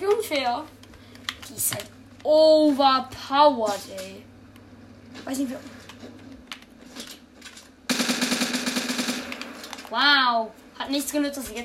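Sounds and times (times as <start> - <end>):
speech: 0.0 - 0.8, 1.5 - 4.3, 5.2 - 6.2, 9.9 - 11.6
Uzi submachine gun fire in a video game: 7.9 - 9.9.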